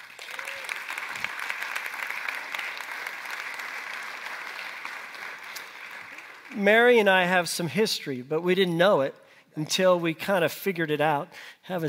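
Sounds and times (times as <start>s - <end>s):
crowd applauding: 0.0s - 7.0s
speech: 6.5s - 11.8s.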